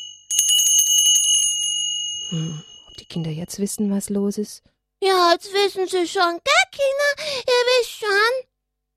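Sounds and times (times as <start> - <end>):
altar bells shaken by altar servers in church during mass: 0.3 - 3.3
speech: 2.3 - 8.5.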